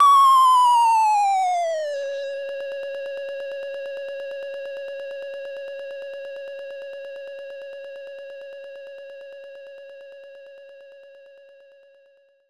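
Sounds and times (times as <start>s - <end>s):
result gauge going down sound effect: 0.0s - 2.4s.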